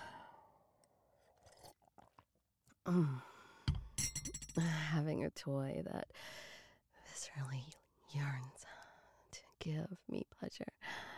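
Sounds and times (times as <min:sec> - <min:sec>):
person sipping coffee with slurping and swallowing: 0:01.2 - 0:02.2
speech: 0:02.9 - 0:03.3, 0:04.6 - 0:06.4, 0:07.2 - 0:08.8, 0:09.6 - 0:10.8
small clinks: 0:04.0 - 0:04.7.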